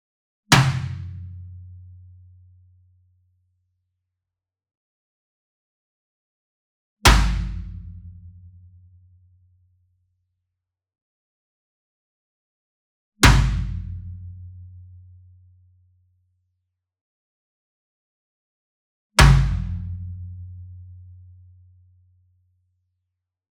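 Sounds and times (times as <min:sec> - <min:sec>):
single marching bass drum hit with a whip beater: 0:07.1 - 0:08.2, 0:13.2 - 0:14.2, 0:19.2 - 0:20.0.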